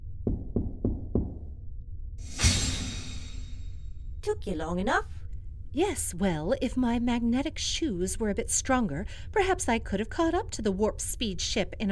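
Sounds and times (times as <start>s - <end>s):
quiet knock on a door: 0.3s - 1.5s
speech: 4.2s - 11.9s.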